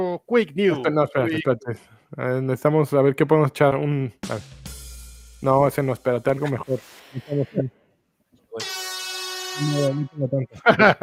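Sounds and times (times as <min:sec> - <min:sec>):
speech: 0:00.0 - 0:04.6, 0:05.4 - 0:07.8, 0:09.6 - 0:11.0
loud buzzy vuvuzela blast: 0:08.6 - 0:10.2
laughter: 0:10.5 - 0:11.0.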